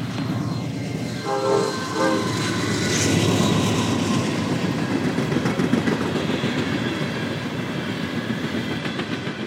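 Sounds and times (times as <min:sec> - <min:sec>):
freight train rumbling past: 0:00.0 - 0:09.4
freight train horn blasts: 0:01.2 - 0:02.7
freight train wheels clattering: 0:01.2 - 0:09.4.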